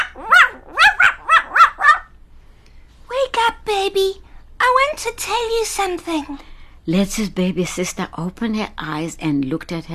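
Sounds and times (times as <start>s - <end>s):
dog barking: 0.0s - 2.1s
speech: 3.9s - 4.2s, 4.9s - 9.9s.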